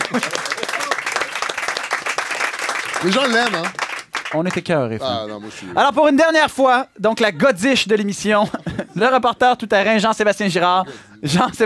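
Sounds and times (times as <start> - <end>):
laughter: 0.0 - 1.3, 7.1 - 9.7
audience applause on an evening television talk show: 0.0 - 4.7
crowd noise: 0.0 - 11.6
speech: 0.1 - 0.4, 3.0 - 11.6.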